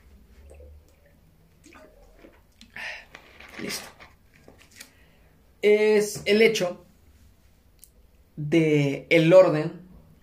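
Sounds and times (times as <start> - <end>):
gulp or slosh of water: 0.0 - 4.0
person sipping and swallowing water: 0.0 - 4.2
speech: 3.6 - 4.0, 5.6 - 6.8, 8.4 - 9.8.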